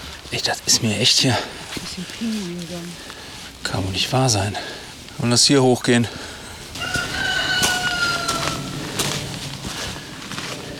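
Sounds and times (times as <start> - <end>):
rustling farmyard noise near a quarry site: 0.0 - 10.7
speech: 0.3 - 6.3
chickens clucking near a quarry site: 5.0 - 9.7
rooster crowing near a quarry site: 6.6 - 9.2.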